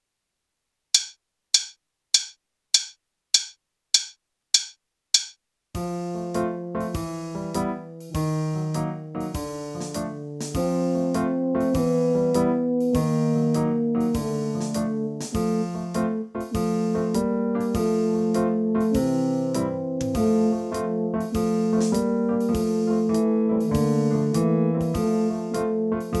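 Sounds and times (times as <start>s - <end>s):
backing track music: 5.8s - 26.1s.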